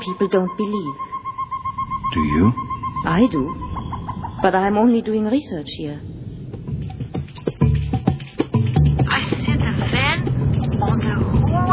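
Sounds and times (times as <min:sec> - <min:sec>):
speech: 0:00.0 - 0:01.2, 0:02.1 - 0:03.7, 0:04.4 - 0:06.1
rising tonal sweeps: 0:00.0 - 0:06.4
rumble of jammed city street traffic on the Rua da Carioca: 0:00.0 - 0:11.7.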